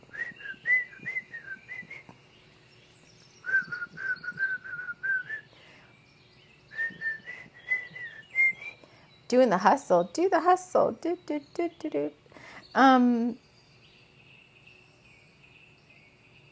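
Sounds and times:
person whistling a bouncy melody: 0.1 - 2.1, 3.4 - 5.5, 6.7 - 8.8
speech: 9.3 - 13.4.

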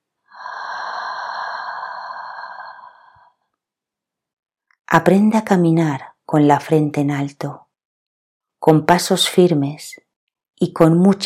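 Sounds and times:
long deep breath in through nose and out through mouth: 0.3 - 3.5
speech: 4.9 - 7.6, 8.6 - 10.0, 10.6 - 11.2.

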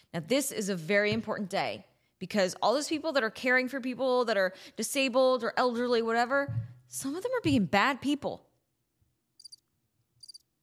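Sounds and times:
speech: 0.1 - 8.5
crickets chirping: 9.4 - 9.6, 10.2 - 10.4.

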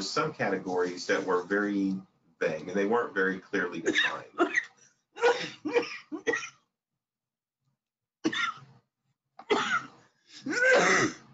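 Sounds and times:
speech: 0.0 - 6.5
woman stifling coughs: 5.2 - 6.6, 8.2 - 8.6, 9.5 - 9.9, 10.5 - 11.2.

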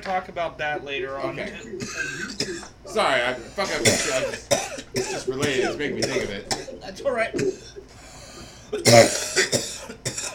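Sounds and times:
speech: 0.0 - 7.8, 8.7 - 9.7
softer throaty hack: 1.2 - 10.3
person coughing: 1.5 - 2.8, 3.6 - 7.8, 8.7 - 10.3.

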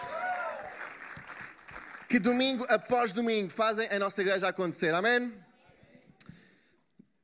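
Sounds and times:
church audience applauding: 0.0 - 3.0
speech: 2.1 - 5.5.

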